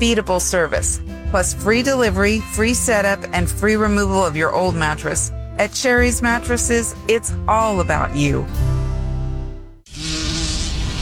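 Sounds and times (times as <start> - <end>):
speech: 0.0 - 8.6
bee buzzing: 9.8 - 11.0.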